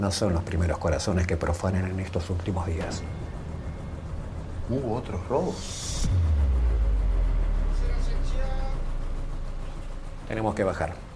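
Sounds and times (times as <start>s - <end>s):
speech: 0.0s - 3.4s, 4.7s - 6.3s, 10.3s - 11.0s
passenger motorboat water bus engine slowing to a stop at a pier: 2.3s - 11.1s.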